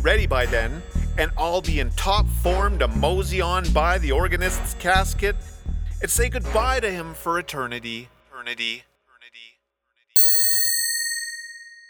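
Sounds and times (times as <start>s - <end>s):
speech: 0.0s - 9.5s
phone new mail notification ding: 10.2s - 11.8s.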